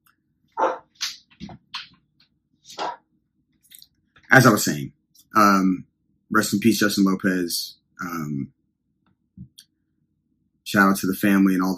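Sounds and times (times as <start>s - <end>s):
neighbor's dog barking: 0.6s - 1.0s
speech: 4.3s - 8.6s, 10.7s - 11.7s.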